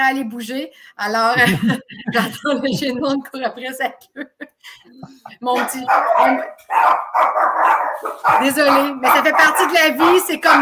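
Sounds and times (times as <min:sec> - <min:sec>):
speech: 0:00.0 - 0:10.6
laughter: 0:01.3 - 0:03.4, 0:04.0 - 0:06.4
small excited dogs barking: 0:05.6 - 0:10.6.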